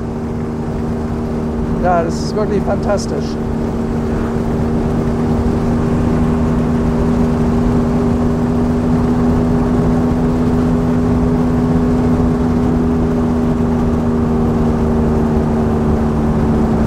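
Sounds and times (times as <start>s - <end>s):
large vintage touring car engine droning while driving: 0.0s - 16.8s
road noise: 0.0s - 16.8s
speech: 1.8s - 3.6s.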